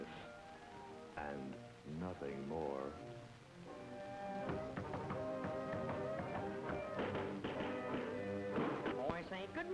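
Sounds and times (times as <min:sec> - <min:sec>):
steady musical background with sustained tones: 0:00.0 - 0:08.9
speech: 0:01.2 - 0:03.4
soft irregular knocking taps on a wooden chamber door: 0:04.4 - 0:09.1.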